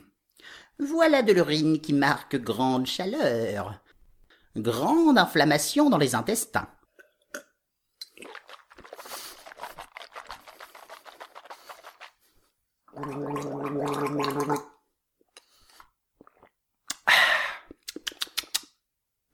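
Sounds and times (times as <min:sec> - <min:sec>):
speech: 0:00.8 - 0:03.8, 0:04.6 - 0:06.8
sharp gulps and clicks: 0:06.9 - 0:17.1, 0:17.7 - 0:18.7
man sipping and swallowing liquid: 0:06.9 - 0:18.7
bubbling gargle of liquid in the throat: 0:08.0 - 0:12.2, 0:12.9 - 0:14.8, 0:16.2 - 0:16.6.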